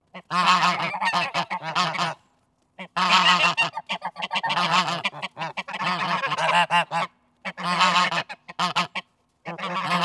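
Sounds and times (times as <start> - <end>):
geese honking outdoors: 0.2 - 2.2, 2.8 - 10.0.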